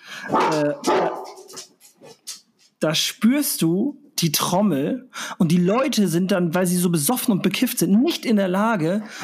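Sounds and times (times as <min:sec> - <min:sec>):
speech: 0:00.2 - 0:01.3, 0:02.8 - 0:09.2
dog barking excitedly, yipping and whining: 0:00.2 - 0:02.3.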